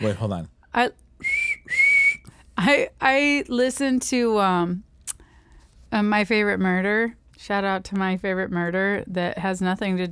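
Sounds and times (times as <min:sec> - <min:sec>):
speech: 0:00.0 - 0:01.8, 0:02.6 - 0:04.9, 0:05.9 - 0:10.0
shrill breathy whistle blasts: 0:01.2 - 0:02.2.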